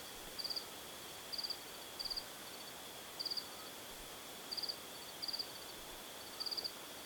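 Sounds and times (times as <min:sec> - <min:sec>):
soft steady hiss of night air: 0:00.0 - 0:07.0
cricket chirping in high trilled bursts at night: 0:00.4 - 0:00.6, 0:01.3 - 0:03.5, 0:04.5 - 0:06.7.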